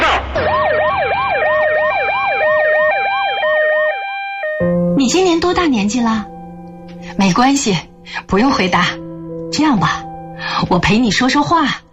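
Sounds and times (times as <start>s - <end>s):
ambulance siren: 0.4s - 5.0s
speech: 5.1s - 6.3s, 7.2s - 9.0s, 9.6s - 11.8s.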